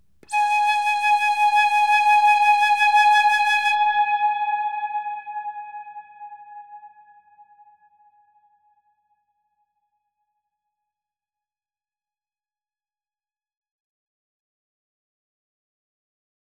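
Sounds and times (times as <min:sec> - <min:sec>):
processed flute: 0:00.2 - 0:07.0.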